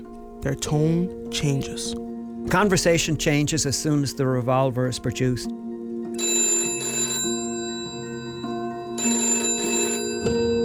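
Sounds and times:
speech: 0.4s - 5.6s
telephone ringing with bell-like trilling: 6.1s - 10.6s.

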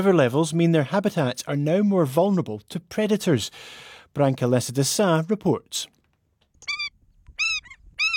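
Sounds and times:
speech: 0.0s - 6.0s
Indian skimmer giving sharp high nasal calls: 6.6s - 8.1s.

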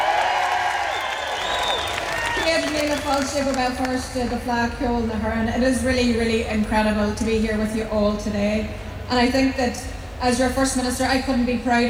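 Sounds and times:
whoops: 0.0s - 3.2s
large crowd cheering: 0.0s - 3.9s
crowd clapping: 0.0s - 4.0s
speech: 2.6s - 11.8s.

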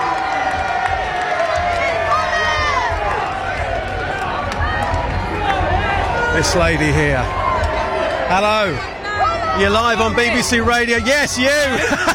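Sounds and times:
outdoor crowd applauding: 0.0s - 9.0s
large outdoor crowd cheering with whoops and shouts: 0.0s - 12.1s
speech: 6.4s - 7.4s, 8.3s - 9.0s, 9.6s - 12.1s
laughter: 11.4s - 12.1s.

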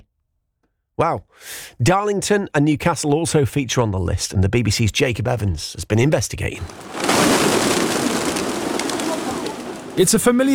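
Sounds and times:
speech: 1.0s - 7.7s, 10.0s - 10.5s
flock of pigeons flapping away in alarm outside a train station: 6.6s - 10.5s.

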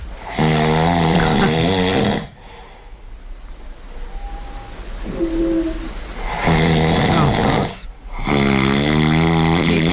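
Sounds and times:
loud snoring from a sleeper with palatal stiffness: 0.2s - 2.4s, 6.2s - 9.9s
quiet breathing: 1.2s - 9.0s.

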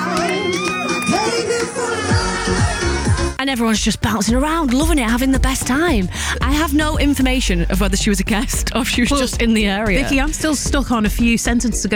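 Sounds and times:
wedding guests cheering and shouting: 0.0s - 6.0s
speech: 3.4s - 11.9s.

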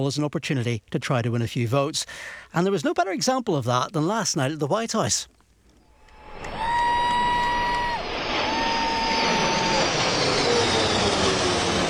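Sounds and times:
speech: 0.0s - 5.4s
aircraft engine roar during flyover above the White House lawn in Washington, D.C.: 5.9s - 11.8s.

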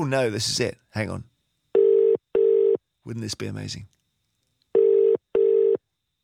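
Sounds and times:
speech: 0.0s - 1.3s, 3.1s - 4.0s
telephone ringing tone on a call placed to a phone box: 1.8s - 2.8s, 4.8s - 5.8s.

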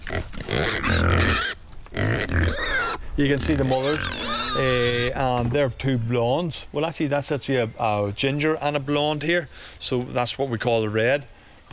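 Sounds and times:
curly-coated pigs grunting and squealing: 0.0s - 5.6s
speech: 3.2s - 11.7s.

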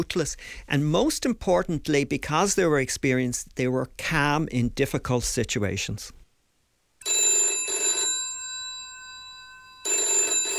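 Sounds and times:
speech: 0.0s - 6.2s
old-style telephone bell ringing: 7.0s - 10.5s.

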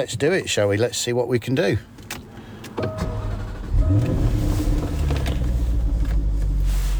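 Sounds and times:
speech: 0.0s - 2.1s
supercar engine cranking and starting in Shetland: 1.7s - 6.9s.

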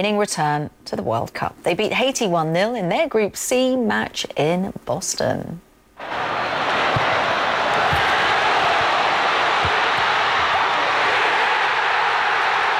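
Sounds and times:
speech: 0.0s - 6.2s
stadium crowd of football fans cheering: 6.0s - 12.7s
dull thumps: 6.8s - 10.8s.

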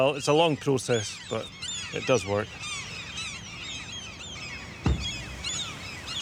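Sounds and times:
speech: 0.0s - 2.7s
gulls and oystercatchers calling in alarm at a falcon: 0.0s - 6.2s
dull thump: 4.8s - 6.2s.

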